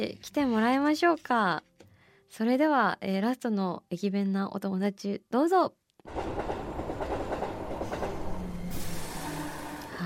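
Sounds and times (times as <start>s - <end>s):
speech: 0.0s - 1.7s, 2.3s - 6.4s
train on the Chuo Main Line arriving at Kobuchizawa station in Yamanashi: 6.1s - 10.0s.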